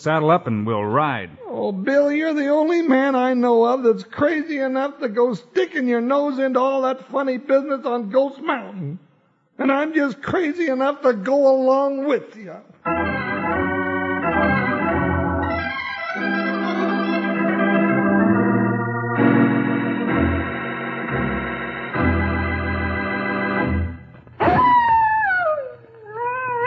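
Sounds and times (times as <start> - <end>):
speech: 0.0 - 13.0
sustained chord-like musical tones: 12.9 - 24.0
coyote howling: 24.4 - 26.6.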